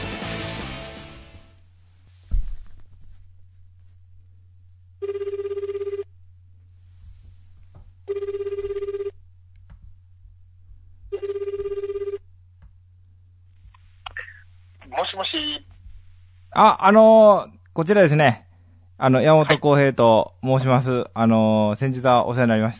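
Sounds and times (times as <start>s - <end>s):
low steady hum: 1.5s - 22.7s
telephone ringback tone on an outgoing call: 5.0s - 6.1s, 8.1s - 9.2s, 11.1s - 12.2s
speech: 16.6s - 18.4s, 19.0s - 22.7s.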